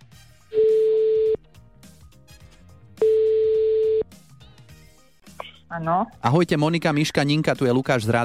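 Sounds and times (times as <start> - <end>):
quiet music: 0.1 - 8.2
telephone ringback tones while placing a call: 0.6 - 1.4, 3.0 - 4.0
speech: 5.8 - 8.2.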